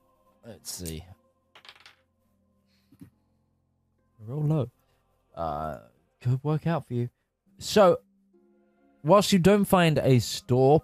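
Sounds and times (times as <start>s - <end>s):
speech: 0.4s - 1.2s, 4.3s - 4.8s, 5.4s - 8.1s, 9.0s - 10.8s
dice clattering across a hard tabletop: 0.8s - 2.1s
dice settling knock: 1.6s - 2.1s.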